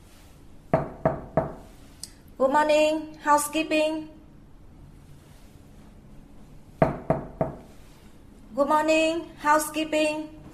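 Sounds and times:
sharp knocking on a hotel room door: 0.8 - 1.6, 6.8 - 7.6
speech: 2.4 - 4.2, 8.6 - 10.4.

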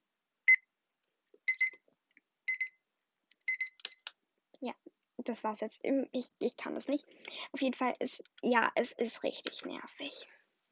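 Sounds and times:
shrill electronic alarm clock beeping: 1.5 - 1.8, 2.5 - 2.7, 3.5 - 3.8
speech: 4.6 - 10.4.

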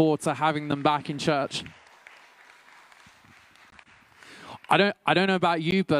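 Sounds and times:
speech: 0.0 - 1.8, 4.7 - 5.9
audience applause for a newly married couple: 0.3 - 4.9.

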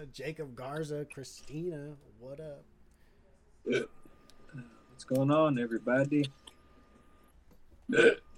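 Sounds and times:
speech: 0.0 - 2.7, 3.6 - 6.4, 7.9 - 8.3
burp: 3.7 - 3.9, 7.9 - 8.3.

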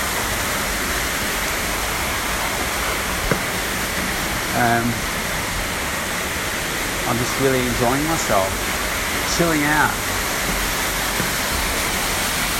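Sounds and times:
large outdoor fountain rushing water: 0.0 - 12.5
speech: 4.6 - 5.2, 7.1 - 8.7, 9.3 - 10.7.

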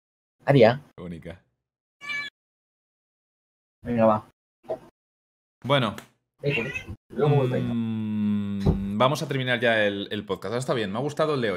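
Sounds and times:
speech: 0.5 - 1.4, 3.8 - 4.9, 5.6 - 8.0, 8.6 - 11.5
cat meowing at a door: 2.0 - 2.3, 6.4 - 7.0.

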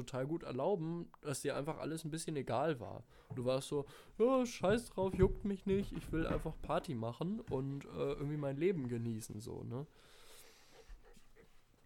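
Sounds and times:
speech: 0.0 - 10.2
small puppy panting and snuffling: 10.4 - 11.8.

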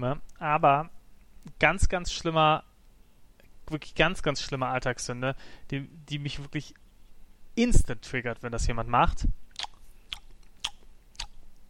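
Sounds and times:
speech: 0.0 - 2.7, 3.7 - 6.8, 7.6 - 9.4
wet open-mouthed chewing with lip smacks while eating: 9.5 - 11.4.

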